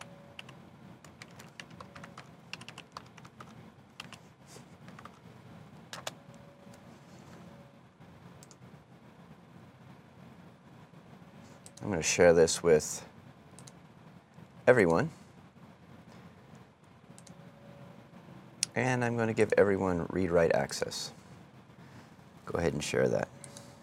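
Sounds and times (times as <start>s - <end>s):
computer keyboard keystrokes clicking while typing a folder name: 0.0s - 4.2s, 4.9s - 5.2s, 5.9s - 6.2s
low constant hum: 0.0s - 23.8s
speech: 11.8s - 13.1s, 14.7s - 15.2s, 18.8s - 21.2s, 22.5s - 23.4s.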